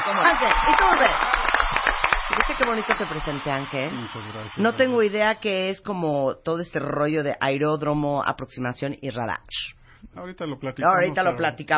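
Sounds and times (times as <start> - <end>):
small crowd applauding: 0.0 - 5.2
voices and cheers: 0.0 - 5.3
speech: 0.1 - 11.7.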